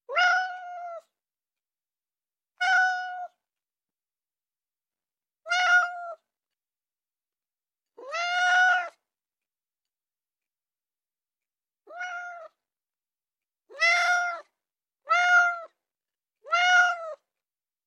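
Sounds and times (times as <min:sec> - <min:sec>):
calm ordinary cat meowing: 0:00.1 - 0:01.1, 0:02.6 - 0:03.4, 0:05.5 - 0:06.2, 0:08.0 - 0:09.0, 0:11.9 - 0:12.6, 0:13.7 - 0:14.5, 0:15.1 - 0:15.8, 0:16.4 - 0:17.2.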